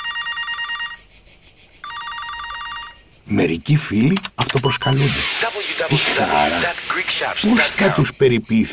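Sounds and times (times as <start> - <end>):
telephone ringing with a bright trilling electronic bell: 0.0 - 1.0, 1.8 - 3.0
speech: 3.3 - 8.7.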